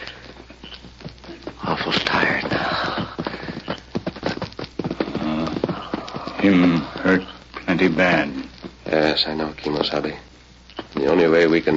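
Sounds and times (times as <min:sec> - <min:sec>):
several horses clip-clopping on hard ground: 0:00.0 - 0:08.8
speech: 0:01.7 - 0:02.6, 0:06.4 - 0:10.3, 0:11.0 - 0:11.7.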